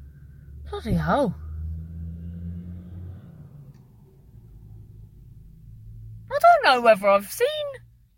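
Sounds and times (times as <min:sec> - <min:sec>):
2013 Vauxhall Astra driving past: 0:00.0 - 0:06.3
speech: 0:00.7 - 0:01.4, 0:06.7 - 0:07.8.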